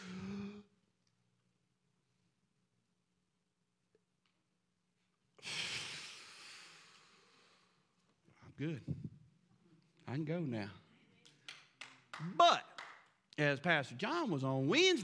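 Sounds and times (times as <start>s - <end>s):
deep human breathing: 5.4s - 8.4s
speech: 8.6s - 9.2s, 10.1s - 10.8s, 12.2s - 12.6s, 13.4s - 15.0s.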